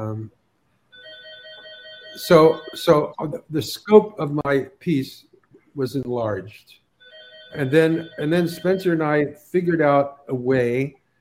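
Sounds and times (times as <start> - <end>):
speech: 0.0 - 0.4, 2.2 - 6.8, 7.5 - 11.0
telephone ringing with electronic tone: 0.9 - 3.1, 7.0 - 9.2.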